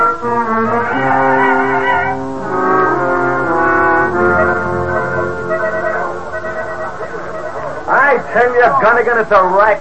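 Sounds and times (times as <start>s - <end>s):
car horn blaring: 0.6s - 8.1s
speech: 8.3s - 9.8s.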